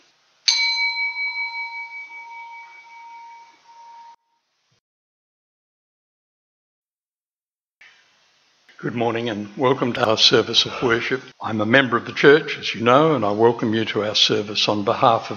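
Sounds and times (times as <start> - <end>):
single bell struck at a Unitarian church worship service: 0.5 - 4.2
speech: 8.8 - 15.3.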